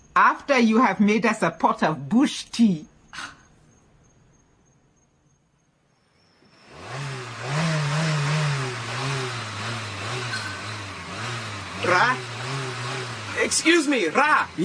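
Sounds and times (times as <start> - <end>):
speech: 0.2 - 3.4, 11.9 - 12.3, 13.4 - 14.6
faint insect-like whine: 2.8 - 6.7
car engine starting up and revving loudly: 6.6 - 14.6.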